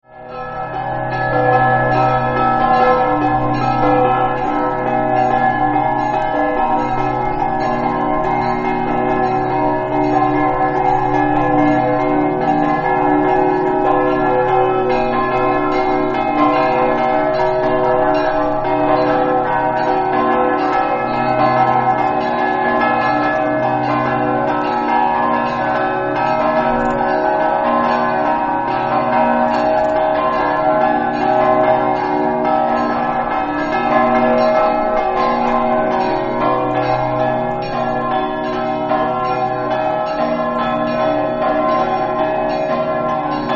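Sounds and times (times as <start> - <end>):
bells ringing in Spilimbergo: 0.2 - 43.5.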